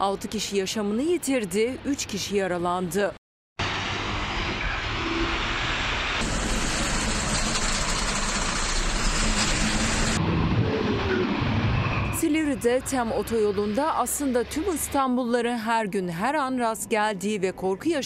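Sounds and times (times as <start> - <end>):
speech: 0.0 - 3.2, 12.6 - 18.0
rushing road and wind noise: 0.0 - 18.0
yellow excavation dump truck engine speeding along the TEM motorway in Edirne: 3.6 - 14.9.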